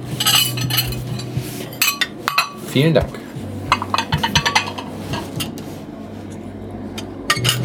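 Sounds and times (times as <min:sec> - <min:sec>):
low hum: 0:00.0 - 0:07.6
plates and cutlery clinking as dishes are handed around at a shared meal: 0:00.2 - 0:02.8, 0:03.7 - 0:05.6, 0:07.3 - 0:07.6
speech: 0:02.8 - 0:03.2.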